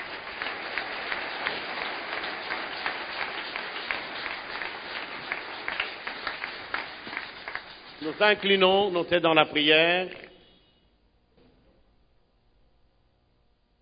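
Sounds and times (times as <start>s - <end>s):
church congregation applauding with many hands clapping: 0.0s - 10.2s
speech: 8.0s - 10.2s.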